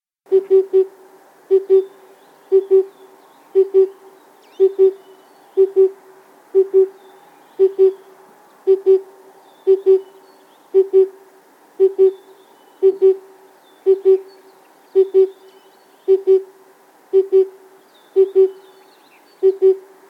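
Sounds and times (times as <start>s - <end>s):
oriental cuckoo calling: 0.3s - 0.9s, 1.5s - 3.0s, 3.6s - 6.0s, 6.6s - 7.0s, 7.6s - 8.1s, 8.7s - 11.2s, 11.8s - 16.5s, 17.1s - 19.9s.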